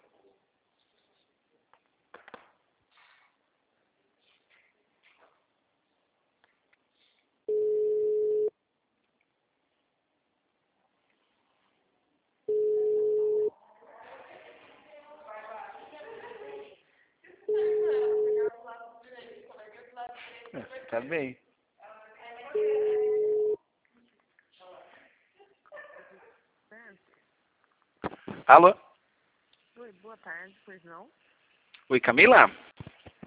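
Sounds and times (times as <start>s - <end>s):
long steady mid-pitched beeps from an automated phone system: 7.5s - 8.5s, 12.5s - 13.5s, 22.6s - 23.6s
quiet talk: 13.5s - 27.4s
speech: 20.9s - 21.4s, 28.5s - 28.8s, 30.1s - 31.3s, 31.9s - 32.8s.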